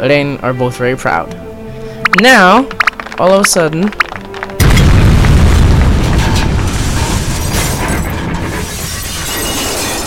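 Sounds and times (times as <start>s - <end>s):
speech: 0.0s - 1.5s, 2.1s - 4.0s
explosion bursting open a city gate: 4.6s - 10.0s.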